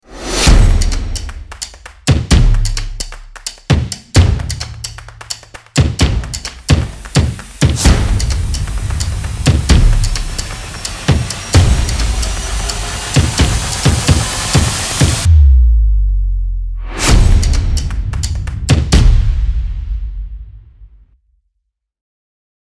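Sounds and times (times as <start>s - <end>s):
stomping drum rhythm: 0.2s - 15.6s, 16.9s - 20.7s.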